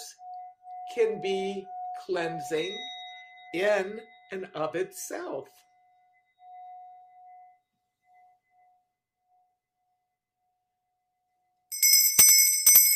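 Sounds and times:
soft steady tone: 0:00.0 - 0:12.9
speech: 0:01.0 - 0:02.9, 0:03.5 - 0:05.6
small handbell ringing for a home blessing: 0:11.7 - 0:12.9.

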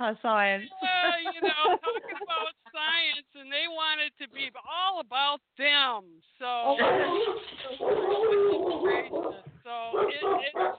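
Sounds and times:
speech: 0:00.0 - 0:02.0, 0:03.5 - 0:10.7
laughter: 0:00.6 - 0:03.2
dog barking and whimpering: 0:06.8 - 0:10.7.

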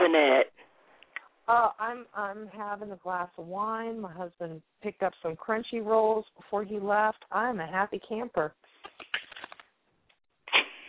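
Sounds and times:
speech: 0:00.1 - 0:00.5, 0:01.5 - 0:08.7
playing cards shuffled: 0:08.7 - 0:09.7.

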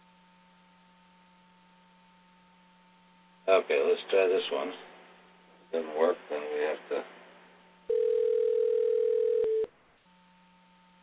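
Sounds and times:
speech: 0:03.5 - 0:04.9, 0:05.7 - 0:07.2
telephone dial tone from a line being dialed into: 0:07.9 - 0:09.7.

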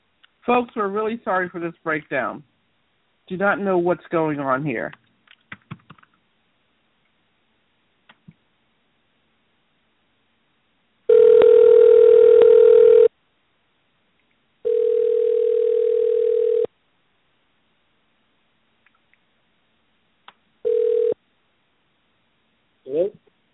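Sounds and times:
speech: 0:00.4 - 0:02.5, 0:03.3 - 0:05.0
telephone dial tone while placing a call: 0:11.1 - 0:13.1, 0:14.6 - 0:16.7, 0:20.6 - 0:21.2.

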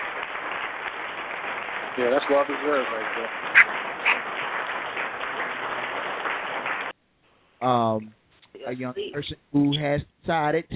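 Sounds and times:
audience applause: 0:00.0 - 0:07.0
speech: 0:02.0 - 0:04.1, 0:07.6 - 0:10.7.

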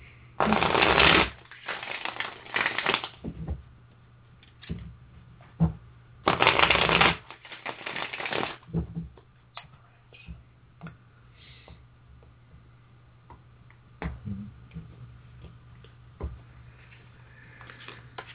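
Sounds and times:
deck of tarot cards being shuffled during a reading: 0:00.5 - 0:03.2, 0:06.3 - 0:08.6.

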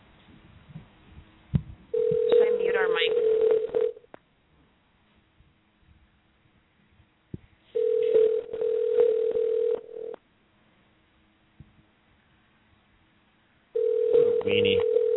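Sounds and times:
telephone line tones while a call is dialed: 0:02.0 - 0:04.1, 0:07.8 - 0:10.2, 0:13.8 - 0:15.1.

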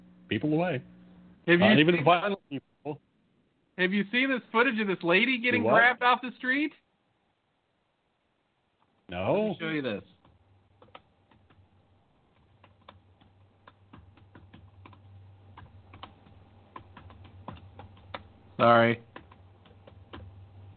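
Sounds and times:
speech: 0:00.3 - 0:03.1, 0:03.8 - 0:06.8, 0:09.1 - 0:10.1, 0:18.6 - 0:19.0
typing on a Bluetooth computer keyboard: 0:10.2 - 0:11.6, 0:12.3 - 0:20.4.

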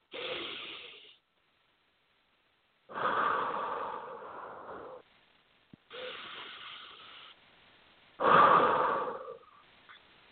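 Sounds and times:
deep breathing in and out during a stress-relief breathing exercise: 0:00.0 - 0:01.2, 0:02.9 - 0:05.1, 0:05.9 - 0:07.4, 0:08.2 - 0:09.7.

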